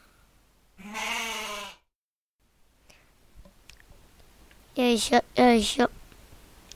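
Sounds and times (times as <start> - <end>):
goat bleating in a video game: 0.8 - 1.8
speech: 4.8 - 6.0.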